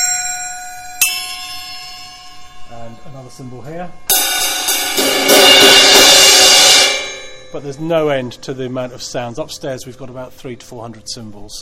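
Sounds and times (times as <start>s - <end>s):
bell mounted on a drum kit ringing: 0.0s - 9.0s
speech: 3.0s - 4.3s, 7.5s - 11.6s.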